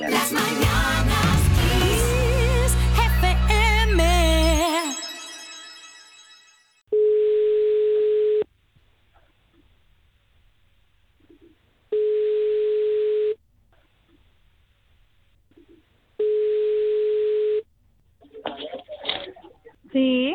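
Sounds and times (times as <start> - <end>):
music: 0.0 - 6.6
telephone ringback tone while placing a call: 4.6 - 8.4, 12.0 - 13.4, 16.2 - 17.6.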